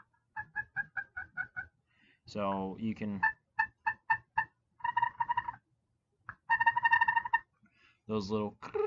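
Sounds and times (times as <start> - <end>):
turkey call making soft clucks: 0.0 - 1.8, 3.1 - 5.6, 6.3 - 7.5
speech: 2.3 - 3.4, 8.1 - 8.8.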